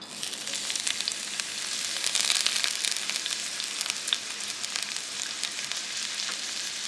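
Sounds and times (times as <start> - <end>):
chopped onions sizzling in hot olive oil in a Dutch oven: 0.0 - 6.8.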